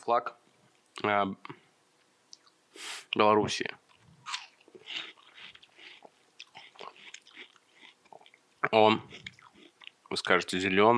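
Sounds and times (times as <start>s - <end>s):
speech: 0.1s - 1.6s, 2.8s - 3.8s, 8.7s - 9.2s, 10.1s - 10.9s
person biting and chewing watermelon: 3.9s - 10.0s.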